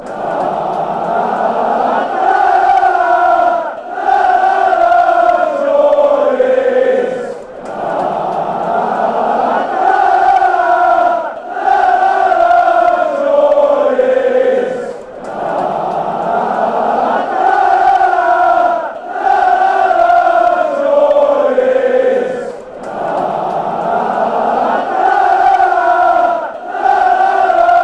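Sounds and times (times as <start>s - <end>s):
fans chanting: 0.0s - 27.8s.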